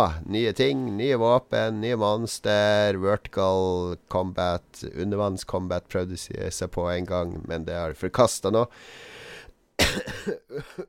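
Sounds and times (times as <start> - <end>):
speech: 0.0 - 9.2, 9.8 - 10.8
soft breathy breathing: 8.7 - 9.6
person recovering from influenza coughing: 9.8 - 10.8.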